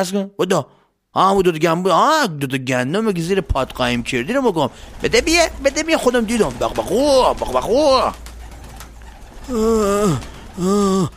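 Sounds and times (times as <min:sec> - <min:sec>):
speech: 0:00.0 - 0:08.2, 0:09.5 - 0:11.1
pigeons cooing near a shrine dome: 0:04.7 - 0:11.1.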